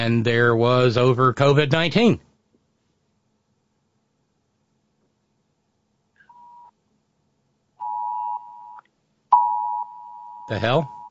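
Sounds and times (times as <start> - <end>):
speech: 0.0 - 2.3, 10.5 - 11.0
Amber alert tone on a phone: 7.8 - 11.0.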